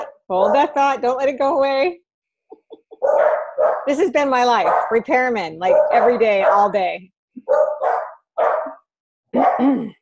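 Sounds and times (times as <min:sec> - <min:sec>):
speech: 0:00.3 - 0:02.0, 0:03.0 - 0:07.7, 0:09.3 - 0:10.0
corgi dogs barking: 0:03.0 - 0:05.0, 0:05.6 - 0:06.8, 0:07.4 - 0:09.7.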